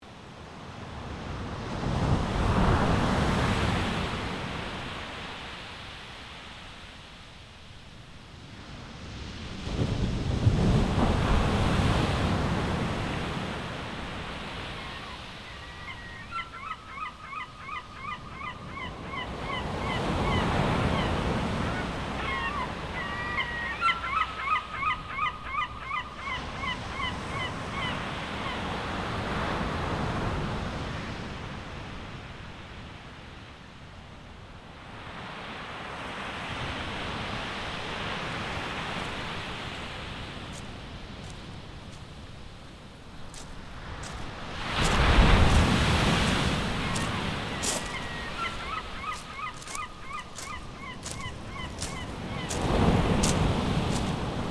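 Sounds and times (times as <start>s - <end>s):
waves on shore: 0.0s - 54.4s
seagull calling: 14.6s - 28.7s, 43.4s - 54.3s.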